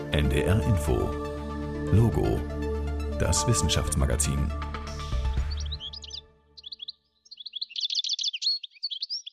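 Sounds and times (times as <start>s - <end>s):
speech: 0.2s - 1.3s, 1.9s - 2.5s, 3.2s - 4.7s
European goldfinch singing: 4.9s - 9.3s.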